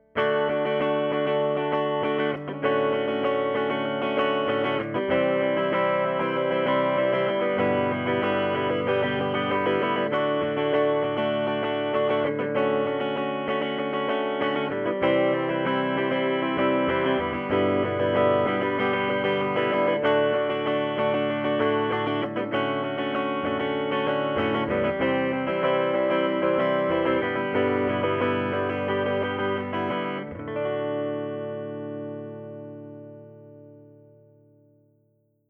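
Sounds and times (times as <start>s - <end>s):
clean guitar recorded with a compressed mic: 0.0s - 35.2s.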